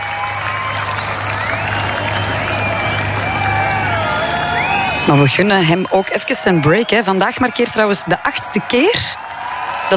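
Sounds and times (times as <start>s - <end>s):
large festival crowd clapping: 0.0s - 9.9s
speech: 5.1s - 9.3s.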